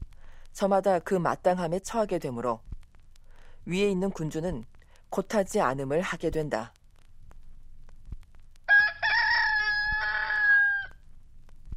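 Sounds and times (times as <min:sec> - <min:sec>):
speech: 0:00.6 - 0:02.7, 0:03.7 - 0:06.8
rooster crowing: 0:08.7 - 0:11.0.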